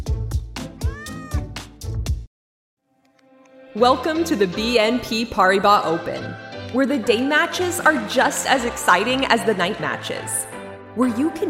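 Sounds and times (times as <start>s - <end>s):
cat meowing in a sing-song run: 0.8s - 1.6s
speech: 3.8s - 11.4s.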